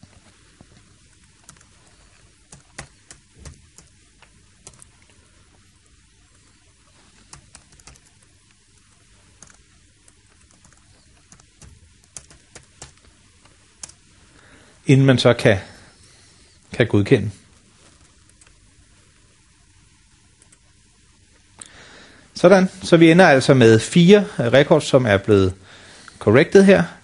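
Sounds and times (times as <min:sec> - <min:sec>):
quiet hiss: 0:00.0 - 0:27.0
typing on a computer keyboard: 0:01.2 - 0:05.1, 0:07.1 - 0:13.0, 0:13.8 - 0:14.0, 0:20.4 - 0:20.7
speech: 0:14.9 - 0:15.7, 0:16.8 - 0:17.4, 0:22.4 - 0:27.0.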